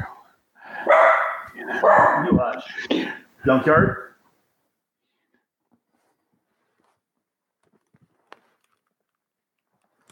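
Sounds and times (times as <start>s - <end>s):
dog barking: 0.8s - 2.4s
speech: 1.7s - 4.0s.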